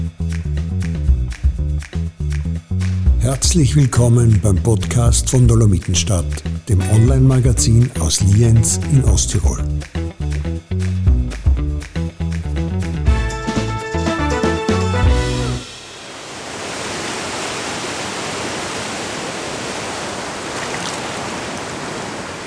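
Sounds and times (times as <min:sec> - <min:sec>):
short rhythmic music passage: 0:00.0 - 0:15.9
speech: 0:03.2 - 0:10.0
wild river rushing, heard from its bank: 0:15.7 - 0:22.4.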